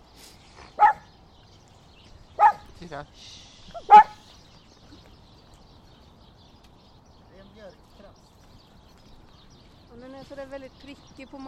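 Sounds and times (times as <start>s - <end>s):
dog barking: 0.8s - 1.1s, 2.4s - 2.7s, 3.8s - 4.2s
speech: 2.8s - 4.1s, 9.9s - 11.4s.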